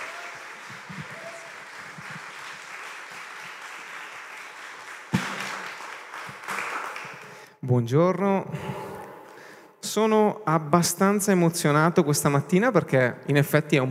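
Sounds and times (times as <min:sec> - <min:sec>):
congregation applauding: 0:00.0 - 0:07.4
speech: 0:07.7 - 0:08.8, 0:10.0 - 0:13.8.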